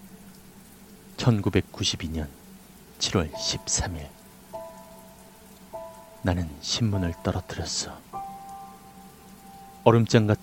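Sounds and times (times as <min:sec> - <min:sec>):
steady rain on wet asphalt: 0:00.0 - 0:10.4
speech: 0:01.2 - 0:02.4, 0:03.0 - 0:04.2, 0:06.2 - 0:08.1, 0:09.8 - 0:10.4
faint sustained tones: 0:03.3 - 0:10.4.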